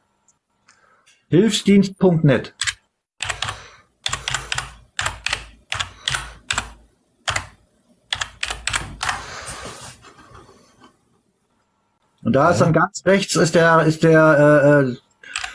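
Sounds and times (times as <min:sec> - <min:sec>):
speech: 0:01.3 - 0:02.6, 0:12.4 - 0:15.0
computer keyboard typing: 0:02.6 - 0:09.3, 0:15.2 - 0:15.5.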